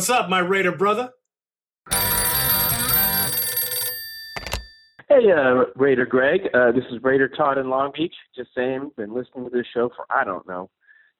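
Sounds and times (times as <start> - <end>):
speech: 0.0 - 1.2, 5.1 - 10.8
telephone bell ringing for an incoming call on a phone-in line: 1.9 - 5.0.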